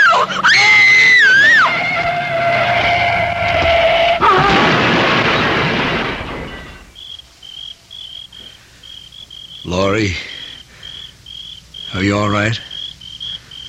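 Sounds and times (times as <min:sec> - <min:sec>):
car tire screech as the brakes fail: 0:00.0 - 0:04.8
car crashing into a tree: 0:01.4 - 0:07.0
speech: 0:12.3 - 0:12.7.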